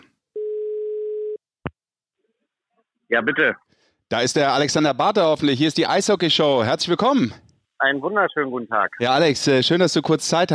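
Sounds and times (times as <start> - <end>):
telephone ringback tone of outgoing call: 0.4 - 1.4
speech: 3.1 - 10.5.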